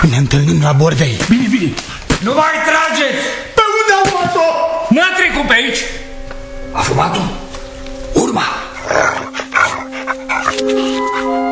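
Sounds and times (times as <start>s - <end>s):
speech: 0.0s - 3.5s, 4.2s - 6.1s, 6.8s - 7.5s, 8.3s - 9.4s, 10.5s - 11.4s
dog whining: 8.2s - 11.4s
dog following a trail barking and yipping: 8.7s - 11.4s.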